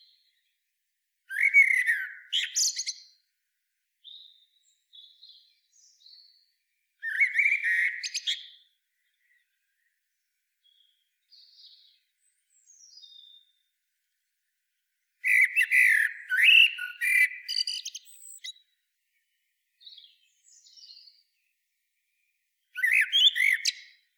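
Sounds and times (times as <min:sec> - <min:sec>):
common blackbird Turdus merula singing: 0:01.3 - 0:03.2, 0:04.0 - 0:09.9, 0:10.6 - 0:13.6, 0:15.2 - 0:18.8, 0:19.7 - 0:21.5, 0:22.1 - 0:24.0.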